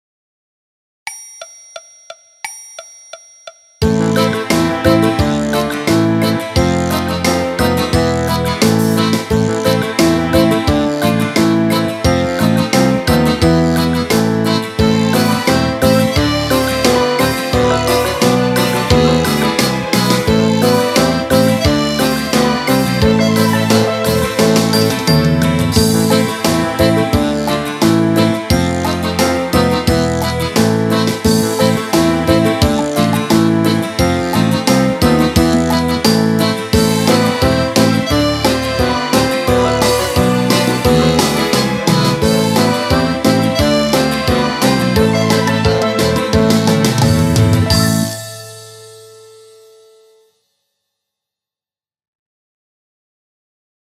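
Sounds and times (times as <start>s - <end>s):
piano with orchestra: 3.9s - 49.5s.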